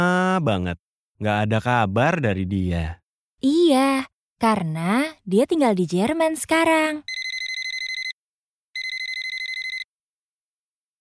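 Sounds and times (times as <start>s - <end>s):
speech: 0.0s - 7.1s
telephone ringing: 7.1s - 8.2s, 8.8s - 9.9s.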